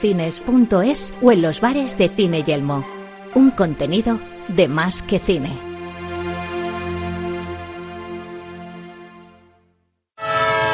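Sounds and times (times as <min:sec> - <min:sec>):
speech: 0:00.0 - 0:05.7
train horn blaring as the train departs: 0:10.2 - 0:10.7.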